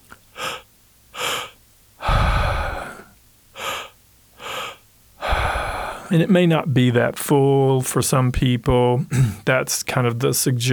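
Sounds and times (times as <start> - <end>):
person's double inhale through the mouth, belly then chest: 0.3 - 6.1
long loud rumbling exhale: 1.2 - 6.1
speech: 6.1 - 10.7.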